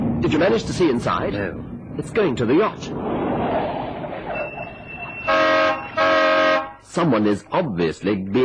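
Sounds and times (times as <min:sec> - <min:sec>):
speech: 0:00.2 - 0:03.1, 0:06.9 - 0:08.4
car horn blasts: 0:05.2 - 0:06.8.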